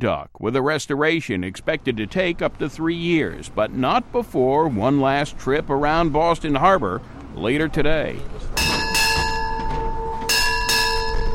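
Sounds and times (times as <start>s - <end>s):
speech: 0.0s - 8.8s
ship's bell ringing aboard a warship: 8.6s - 11.3s.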